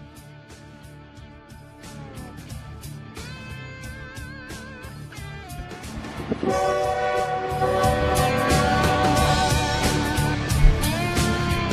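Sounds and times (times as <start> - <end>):
heavy rumble of an approaching train: 5.7 - 11.7
train horn blaring: 6.4 - 10.7.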